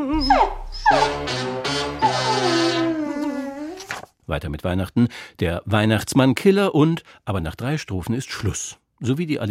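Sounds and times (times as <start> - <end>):
dog whimpering and yipping: 0.1 - 1.2, 2.0 - 3.8
speech: 4.3 - 9.4.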